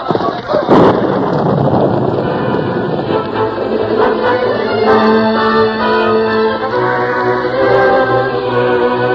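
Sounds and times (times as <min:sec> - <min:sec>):
thunder crack: 0:00.0 - 0:05.4
storm and heavy rain: 0:00.0 - 0:09.1
sustained tones: 0:02.0 - 0:09.1.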